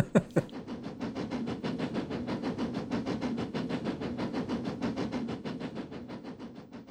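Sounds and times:
laughter: 0.0 - 0.5
train rumbling on rails: 0.0 - 6.8.

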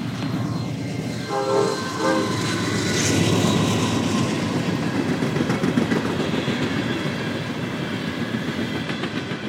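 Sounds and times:
freight train rumbling past on the main line: 0.0 - 9.4
freight train horn: 1.2 - 3.1.

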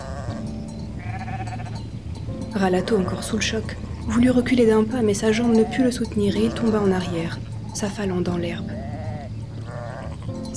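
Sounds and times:
several sheep bleating: 1.0 - 1.8, 5.3 - 7.3, 8.8 - 10.3
speech: 2.6 - 8.8.

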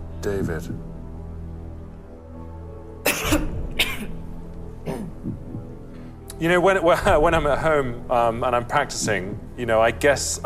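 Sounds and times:
speech: 0.2 - 0.9, 6.4 - 10.4
woman in an audience clearing her throat: 3.1 - 4.2, 4.9 - 5.2
woman in an audience coughing: 3.1 - 4.2, 4.9 - 5.2.

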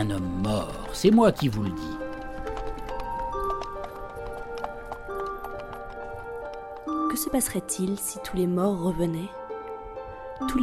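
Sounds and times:
speech: 0.0 - 2.0, 7.2 - 9.4, 10.4 - 10.6
horse-drawn cart rolling along a road at night in Brittany: 0.0 - 8.2
horse hooves clip-clopping at a steady trot: 0.0 - 10.5.

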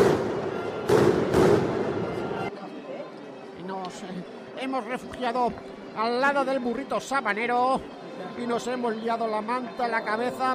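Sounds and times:
gunshots: 0.0 - 2.3
speech: 4.7 - 10.5.

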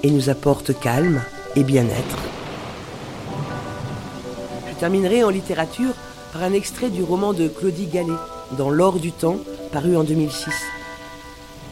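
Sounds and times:
speech: 0.0 - 2.4, 4.8 - 10.8
steady heavy rain in a thunderstorm: 0.0 - 11.7
low rumble of thunder: 1.4 - 8.5.

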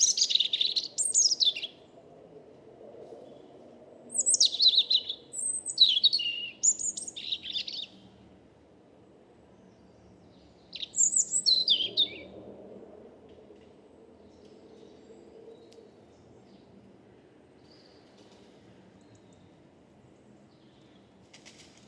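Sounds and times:
European robin Erithacus rubicola singing in woodland: 0.0 - 1.8, 4.1 - 8.0, 10.6 - 12.3
steady low hum of traffic or city noise: 0.0 - 21.8.

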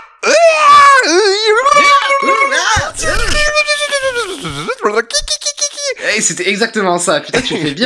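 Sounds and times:
person imitating a woman's wild shrieking and excited screams: 0.0 - 5.9
speech: 4.4 - 7.8.

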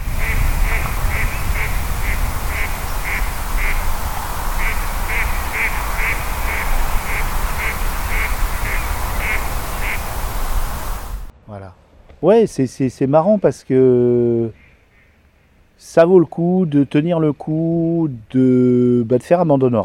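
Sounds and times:
ducks quacking on the ponds of Hollande: 0.0 - 11.3
constant low rumble of wind: 0.0 - 15.8
speech: 12.2 - 14.6, 15.8 - 19.8.

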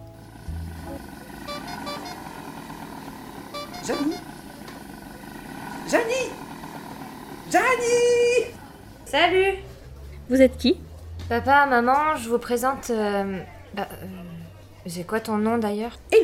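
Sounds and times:
car horns honking: 0.0 - 8.5
faint distant voices calling out: 0.0 - 15.0
traffic engines rumbling: 0.0 - 16.2
speech: 3.9 - 4.3, 10.3 - 16.2.

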